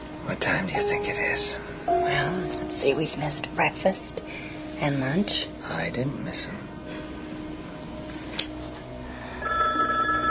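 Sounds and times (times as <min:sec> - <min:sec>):
quiet room hum: 0:00.0 - 0:10.2
speech: 0:00.3 - 0:06.7
telephone ringing with a trilling tone: 0:09.4 - 0:10.2.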